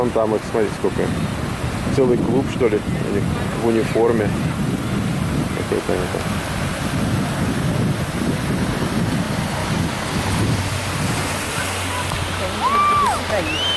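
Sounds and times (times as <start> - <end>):
speech: 0.0 - 4.6, 5.7 - 6.3
ocean waves breaking on the shore: 0.0 - 13.7
wind rumbling across the microphone: 0.0 - 13.7
faint whistling tones: 13.4 - 13.7.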